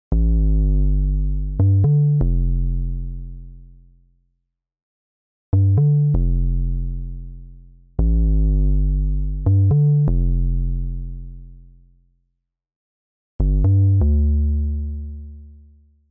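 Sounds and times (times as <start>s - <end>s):
metronome bass: 0.1s - 3.5s, 5.6s - 11.4s, 13.4s - 15.5s.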